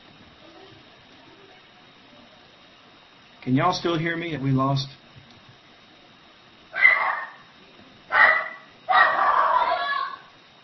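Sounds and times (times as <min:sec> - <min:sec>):
speech: 0:03.4 - 0:05.0
dog barking: 0:06.7 - 0:07.5, 0:08.1 - 0:10.2.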